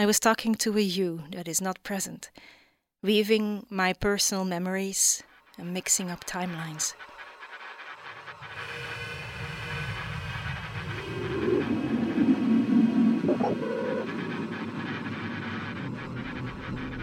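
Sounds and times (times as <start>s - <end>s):
speech: 0.0s - 7.1s
faint hissing: 5.0s - 17.0s
train rumbling at low speed approaching a station: 5.2s - 17.0s
tonal squeal of a train easing forward: 5.4s - 17.0s.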